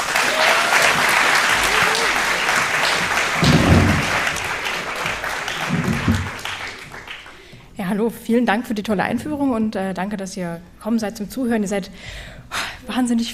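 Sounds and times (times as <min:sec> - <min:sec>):
sizable audience applauding: 0:00.0 - 0:07.6
speech: 0:08.0 - 0:13.3.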